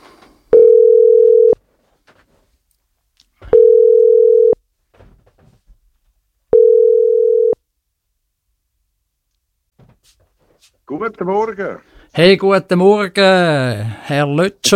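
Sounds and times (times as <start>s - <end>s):
telephone ringback tone: 0.5s - 1.6s, 3.5s - 4.6s, 6.5s - 7.6s
speech: 10.9s - 14.7s.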